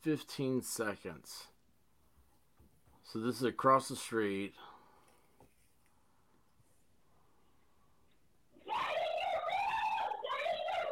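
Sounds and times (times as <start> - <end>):
speech: 0.0 - 1.5, 3.1 - 4.7
woman screaming loudly across the street: 8.6 - 10.8.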